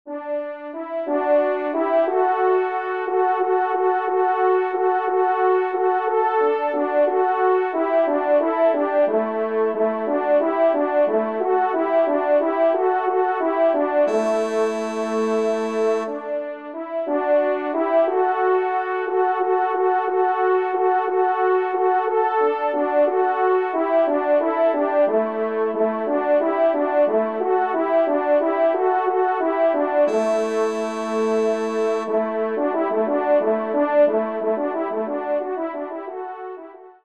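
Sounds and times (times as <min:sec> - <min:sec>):
caprice in C major: 0:00.2 - 0:36.9.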